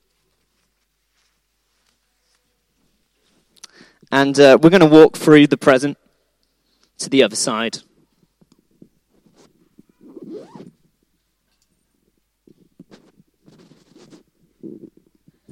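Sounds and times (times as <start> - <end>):
speech: 4.1 - 6.0, 7.0 - 7.9
zipper being pulled open: 9.2 - 10.9, 12.9 - 15.1.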